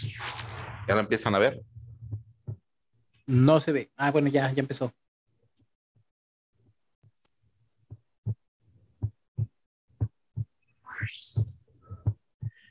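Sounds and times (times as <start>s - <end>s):
speech: 0.9s - 1.7s, 3.3s - 5.0s
heartbeat thumping: 1.6s - 2.7s, 7.9s - 10.6s, 11.3s - 12.6s.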